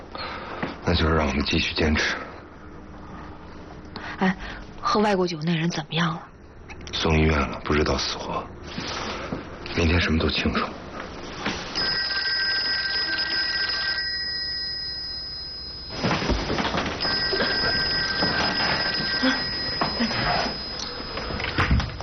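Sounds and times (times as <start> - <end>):
speech: 0.9 - 2.3, 4.2 - 6.3, 7.0 - 8.9, 9.8 - 10.8
telephone ringing: 11.7 - 22.0.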